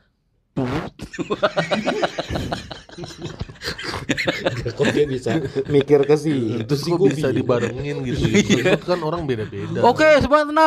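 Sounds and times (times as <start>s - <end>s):
several people making voiced imitation fart noises: 0.6s - 1.2s
people snickering and laughing: 1.0s - 10.3s
speech: 1.2s - 10.6s.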